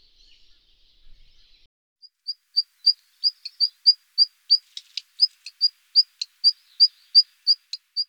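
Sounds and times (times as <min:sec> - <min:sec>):
black redstart singing: 0:02.3 - 0:08.0.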